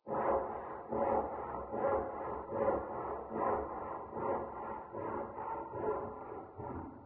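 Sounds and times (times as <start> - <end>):
sawing wood: 0.1 - 7.0.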